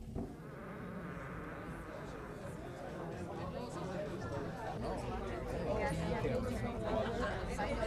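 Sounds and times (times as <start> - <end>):
crowd of people chattering: 0.6 - 7.8.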